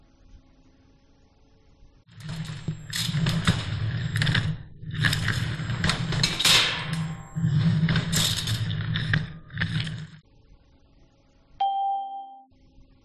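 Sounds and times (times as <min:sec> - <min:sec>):
furniture being moved with heavy scraping and dragging: 0:02.1 - 0:10.2
single clear ding: 0:11.6 - 0:12.5.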